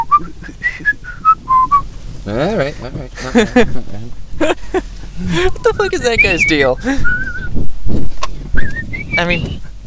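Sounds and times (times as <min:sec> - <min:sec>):
person whistling a quick bright melody: 0:00.0 - 0:01.8, 0:05.7 - 0:07.6, 0:08.6 - 0:09.6
speech: 0:02.3 - 0:04.1, 0:05.8 - 0:07.2, 0:09.2 - 0:09.6
laughter: 0:02.4 - 0:05.6.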